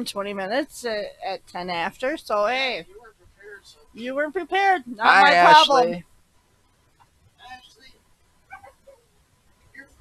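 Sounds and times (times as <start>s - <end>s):
speech: 0.0s - 3.0s, 3.6s - 6.1s
low hum: 0.0s - 9.9s
puppy giving high-pitched whiny yips: 8.5s - 9.0s.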